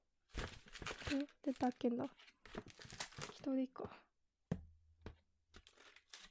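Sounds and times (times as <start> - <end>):
paper bag being handled and opened, crinkling: 0.3 - 3.5, 5.7 - 6.2
speech: 1.1 - 2.7, 3.4 - 4.1.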